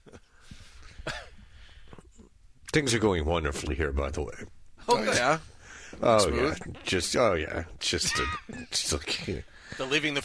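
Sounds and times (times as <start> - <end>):
person coughing with a throaty rasp: 1.0 - 1.4
speech: 2.8 - 10.2.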